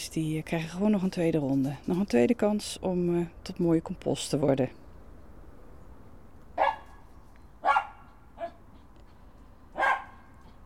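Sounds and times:
speech: 0:00.2 - 0:04.8
neighbour's dog barking outside: 0:06.6 - 0:07.0, 0:07.6 - 0:08.6, 0:09.8 - 0:10.4.

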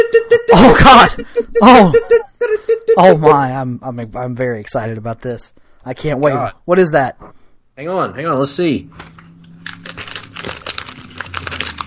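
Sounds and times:
speech: 0:00.0 - 0:09.2
giant sheet of paper crinkling as it is unfolded: 0:08.9 - 0:11.8.

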